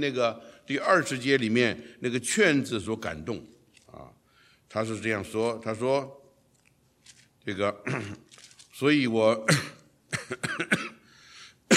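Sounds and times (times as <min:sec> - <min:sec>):
speech: 0:00.0 - 0:06.2, 0:07.1 - 0:08.2, 0:08.8 - 0:11.0
man coughing during a sermon: 0:07.8 - 0:08.3, 0:09.5 - 0:11.1.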